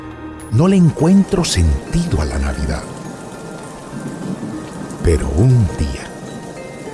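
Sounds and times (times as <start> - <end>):
speech: 0.5 - 3.0, 5.0 - 6.1
heavy rain falling: 0.5 - 6.9.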